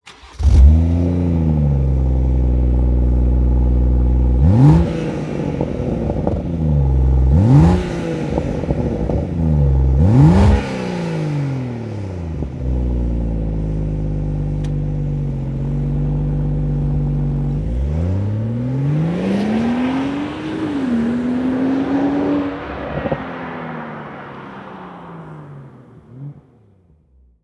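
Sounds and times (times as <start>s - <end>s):
stock exhaust of BMW 440i: 0.0s - 26.9s.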